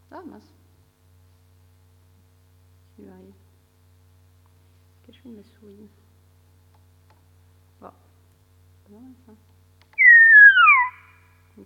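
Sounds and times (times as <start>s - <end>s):
speech: 0.2s - 0.6s, 3.0s - 3.5s, 5.1s - 6.1s, 7.8s - 8.1s, 8.9s - 9.5s
bird song of a local dialect variant: 10.0s - 11.3s.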